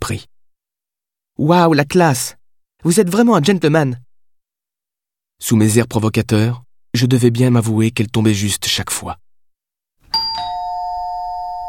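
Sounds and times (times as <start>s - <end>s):
speech: 0.1s - 0.3s, 1.4s - 4.0s, 5.4s - 9.3s
two-tone doorbell chime at a front door: 10.1s - 11.6s.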